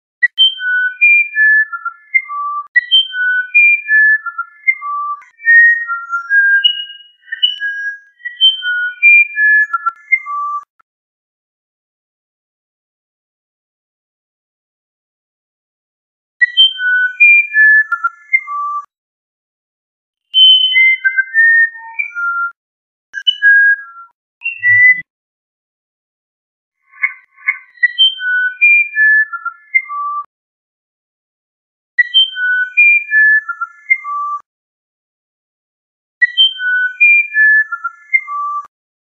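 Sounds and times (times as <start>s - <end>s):
true Uirapuru singing: 0.2s - 10.7s, 16.4s - 18.9s, 20.3s - 22.6s, 23.2s - 25.0s, 26.9s - 30.2s, 32.0s - 34.4s, 36.2s - 38.7s.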